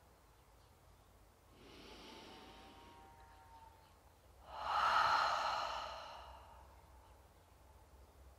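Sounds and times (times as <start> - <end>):
deep deliberate conscious breath: 1.5 - 3.2, 4.4 - 6.9.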